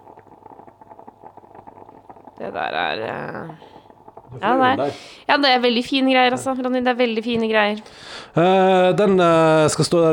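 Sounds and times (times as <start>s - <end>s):
stovetop coffee maker bubbling and gurgling water up: 0.0s - 10.1s
speech: 2.4s - 10.1s.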